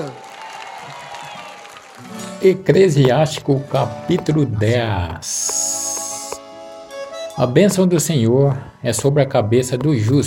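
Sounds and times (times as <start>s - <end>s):
speech: 0.0s - 0.2s, 2.0s - 5.7s, 7.4s - 10.2s
crowd applauding: 0.0s - 2.4s.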